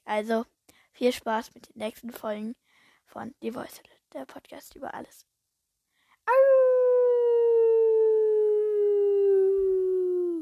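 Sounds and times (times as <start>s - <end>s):
speech: 0.1s - 5.3s
person howling with an echo effect: 6.3s - 10.4s.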